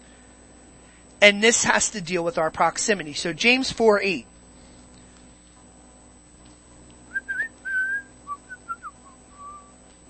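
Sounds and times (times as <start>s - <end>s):
speech: 1.2s - 4.3s
person whistling a short wandering tune into the microphone: 7.1s - 9.8s.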